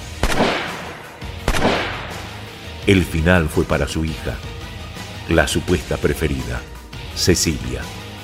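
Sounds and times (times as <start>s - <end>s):
loud shotgun blasts: 0.0s - 2.5s
speech: 2.8s - 4.6s, 5.3s - 8.0s.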